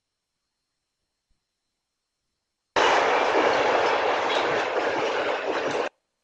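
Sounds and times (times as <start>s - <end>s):
rumble and hiss of a moving train: 2.8s - 5.9s.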